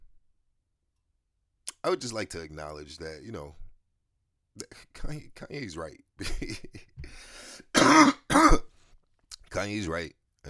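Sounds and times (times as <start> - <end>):
speech: 1.8 - 3.6, 4.6 - 8.6, 9.5 - 10.4
person clearing throat: 7.8 - 8.6
person coughing: 7.8 - 8.6.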